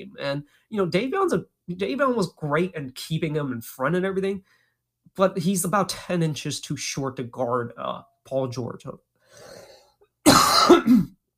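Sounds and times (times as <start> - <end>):
speech: 0.0 - 4.6, 5.2 - 9.6, 10.7 - 11.2
harsh rasping cough: 10.2 - 11.2.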